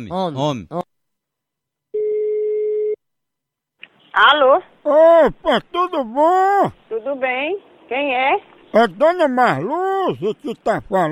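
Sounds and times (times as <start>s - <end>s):
speech: 0.0s - 0.9s, 4.2s - 11.1s
telephone ringback tone on an outgoing call: 2.0s - 3.0s.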